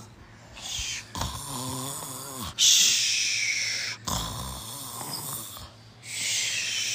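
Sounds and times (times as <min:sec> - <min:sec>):
person imitating a jailer snoring loudly outside a prison: 0:01.0 - 0:02.9, 0:03.7 - 0:06.9.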